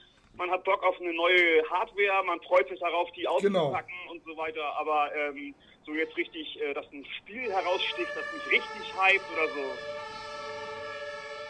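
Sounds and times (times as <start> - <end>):
speech: 0.4 - 10.2
ambulance siren as the ambulance drives past: 5.9 - 11.4.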